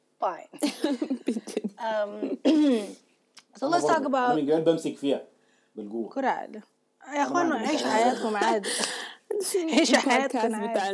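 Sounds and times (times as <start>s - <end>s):
speech: 0.2s - 3.0s, 3.6s - 10.9s
rough raspy throat clearing and short coughs: 2.4s - 3.0s.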